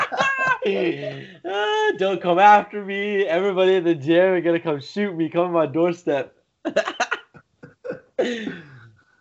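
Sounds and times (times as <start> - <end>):
person coughing: 0.0 - 1.3, 6.7 - 8.9
laughter: 0.0 - 2.2, 6.7 - 8.6
speech: 0.7 - 7.1, 8.2 - 8.7.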